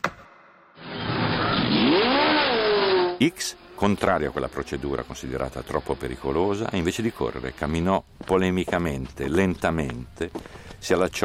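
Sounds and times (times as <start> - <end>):
racing car engines revving at a race start: 0.8 - 7.8
speech: 3.2 - 11.2.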